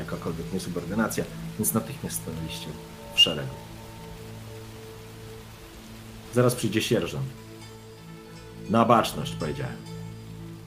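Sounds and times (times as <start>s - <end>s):
light drizzling rain: 0.0s - 10.6s
speech: 0.3s - 3.7s, 6.3s - 7.4s, 8.6s - 10.0s.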